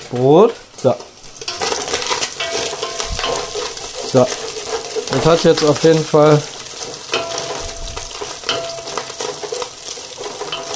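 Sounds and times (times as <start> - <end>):
food frying in a hot pan with its water cooked off: 0.0 - 10.7
speech: 0.1 - 1.1, 4.1 - 4.5, 5.1 - 6.5
faint stirring scrapes in a pan: 1.3 - 10.7.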